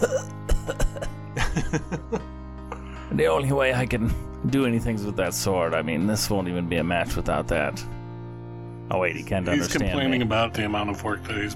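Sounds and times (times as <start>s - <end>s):
weak feeble acted coughs: 0.0s - 1.2s
laughter: 0.6s - 2.3s, 9.5s - 10.3s
speech: 1.6s - 2.2s, 3.2s - 8.0s, 8.9s - 11.5s.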